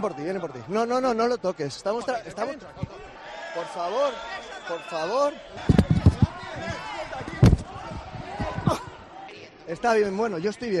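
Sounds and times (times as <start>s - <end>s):
speech: 0.0s - 5.9s, 9.7s - 10.7s
voices talking excitedly: 0.0s - 10.7s
heavy thuds and blows in a scuffle: 5.6s - 8.9s.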